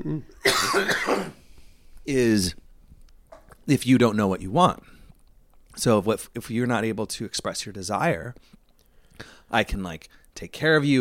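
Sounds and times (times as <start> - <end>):
speech: 0.0 - 1.0, 2.1 - 2.6, 3.7 - 4.9, 5.8 - 8.6, 9.2 - 10.9
harsh cough: 0.4 - 1.4.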